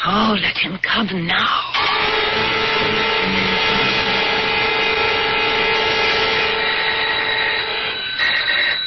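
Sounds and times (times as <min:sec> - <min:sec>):
speech: 0:00.1 - 0:03.8
loud electric doorbell buzzing: 0:01.8 - 0:08.8.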